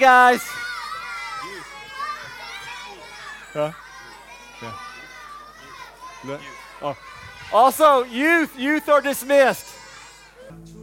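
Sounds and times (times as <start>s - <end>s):
speech: 0.0s - 0.6s, 3.6s - 3.8s, 4.6s - 4.8s, 6.2s - 9.7s
crowd of children shouting and chattering leaving a church: 0.0s - 10.6s.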